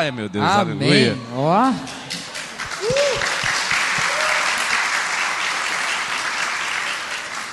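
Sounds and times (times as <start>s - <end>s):
speech: 0.0s - 2.0s
audience applause of many clapping hands: 2.0s - 7.5s.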